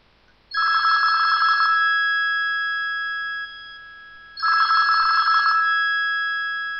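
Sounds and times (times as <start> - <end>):
electronic home telephone ringtone: 0.5 - 6.7.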